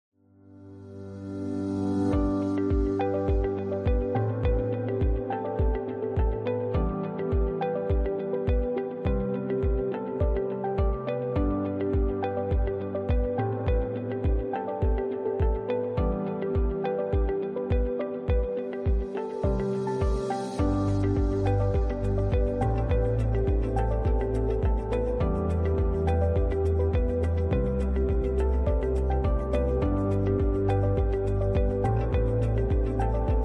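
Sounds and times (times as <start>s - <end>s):
upbeat ambient music: 0.6s - 33.4s.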